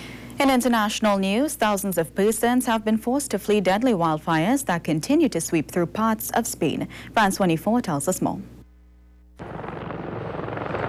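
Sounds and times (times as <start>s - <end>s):
speech: 0.4s - 8.6s
firefighting helicopters carrying water flying over a small town: 9.4s - 10.8s.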